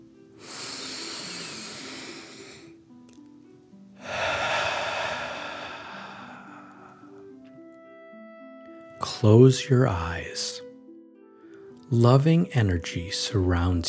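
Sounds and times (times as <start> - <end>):
deep breath in and out during a guided relaxation: 0.4 - 2.8, 4.0 - 7.4
speech: 9.2 - 10.6, 11.9 - 13.8.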